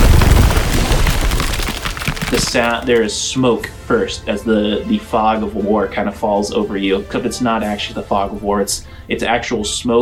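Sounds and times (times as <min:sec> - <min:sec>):
deep rumbling explosion: 0:00.0 - 0:02.9
speech: 0:02.4 - 0:10.0.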